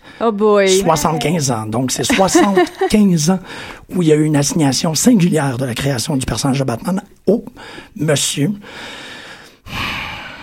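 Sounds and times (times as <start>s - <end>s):
speech: 0.2s - 9.1s
laughter: 0.7s - 3.4s
person drawing a deep breath in and out: 3.4s - 3.9s, 7.6s - 8.0s, 8.6s - 10.4s.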